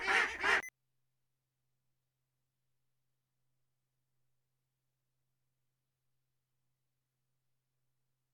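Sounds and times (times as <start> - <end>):
duck giving harsh nasal quacks: 0.0 - 0.7.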